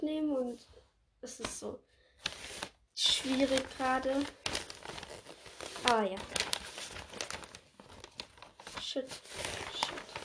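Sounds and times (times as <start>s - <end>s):
speech: 0.1s - 2.4s, 3.0s - 4.6s, 5.9s - 6.4s, 9.0s - 9.6s
wrapping paper crinkling while wrapping gifts for an Advent calendar: 2.2s - 10.2s.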